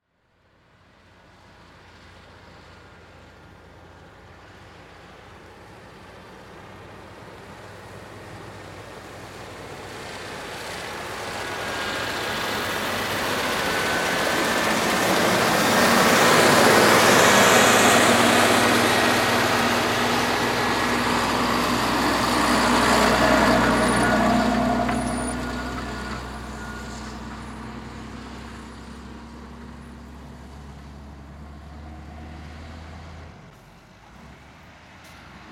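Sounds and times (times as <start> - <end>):
tractor approaching and passing: 0.8 - 35.5.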